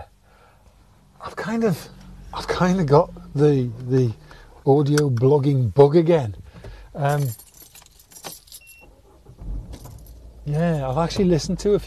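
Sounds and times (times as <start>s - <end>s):
low car engine rumble in a supermarket car park: 0.0s - 11.8s
speech: 1.5s - 6.4s, 7.0s - 7.4s, 10.5s - 11.8s
keys jangling: 7.0s - 8.8s, 9.7s - 10.2s.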